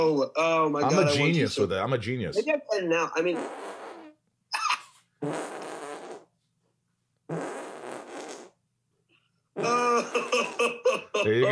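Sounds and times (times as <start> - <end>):
speech: 0.0 - 3.8, 5.2 - 5.5, 11.2 - 11.4
armpit fart made by hand against skin: 3.2 - 6.3, 7.3 - 8.6, 9.6 - 10.8
laughter: 9.7 - 11.4.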